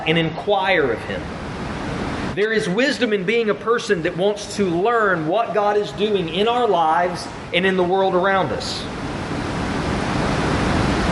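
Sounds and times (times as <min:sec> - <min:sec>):
speech: 0:00.0 - 0:01.4, 0:02.4 - 0:09.0
heavy rain pouring on a building roof: 0:08.9 - 0:11.1.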